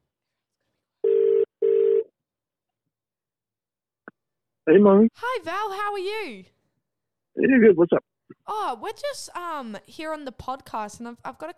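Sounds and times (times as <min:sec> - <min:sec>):
ringback tone of an outgoing telephone call: 0:01.1 - 0:02.0
speech: 0:04.7 - 0:06.6, 0:07.4 - 0:11.5.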